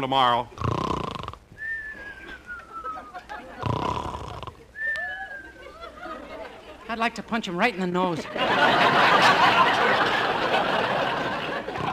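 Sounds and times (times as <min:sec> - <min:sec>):
speech: 0:00.0 - 0:00.7, 0:06.9 - 0:10.2
man snoring in his sleep: 0:00.6 - 0:01.4, 0:03.6 - 0:04.6
laughter: 0:02.0 - 0:07.1, 0:07.8 - 0:11.9
man mumbling in his sleep: 0:03.6 - 0:04.7, 0:11.6 - 0:11.9.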